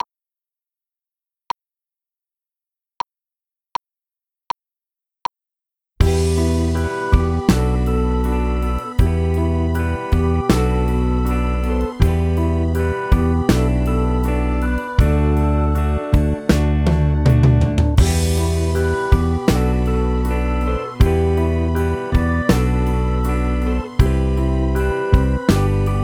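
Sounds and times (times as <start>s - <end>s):
drums: 6.0s - 11.1s, 11.7s - 15.5s, 16.1s - 26.0s
keyboard playing: 6.0s - 26.0s.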